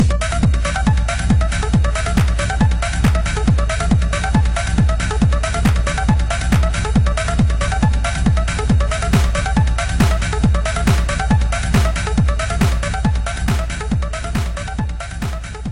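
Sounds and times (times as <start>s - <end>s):
techno clap: 0.0s - 15.7s.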